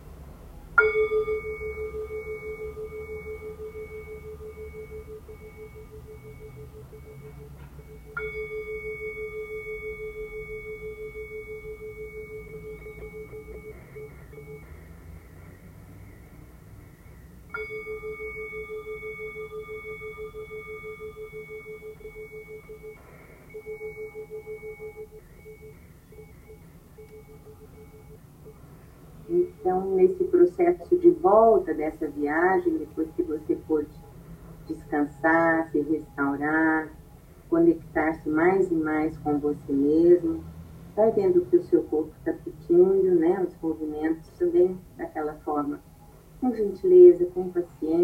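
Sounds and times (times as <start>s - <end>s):
faint low hum: 0.0s - 48.0s
soft gong ringing: 0.8s - 14.9s, 17.5s - 28.6s
speech: 30.6s - 34.0s, 34.9s - 37.0s, 37.6s - 48.0s.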